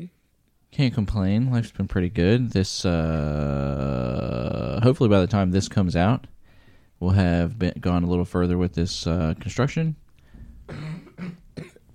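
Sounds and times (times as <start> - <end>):
speech: 0.0 - 6.4, 7.0 - 10.0, 10.7 - 11.4
harsh throaty coughs: 10.6 - 11.9.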